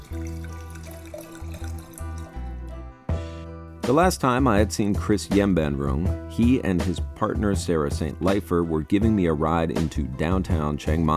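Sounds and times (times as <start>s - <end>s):
glass clink: 0.0s - 2.3s
wine pouring into a glass: 0.0s - 2.7s
speech: 3.9s - 11.1s.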